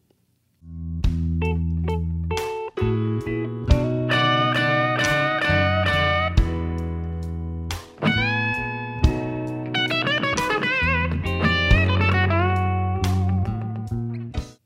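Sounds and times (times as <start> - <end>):
slow blues guitar lick in G: 0.7 - 14.6.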